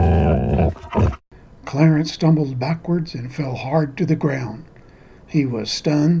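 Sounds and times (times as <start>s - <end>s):
huge dog growling and lunging beside a diner: 0.0s - 1.2s
speech: 1.7s - 4.7s, 5.3s - 6.1s.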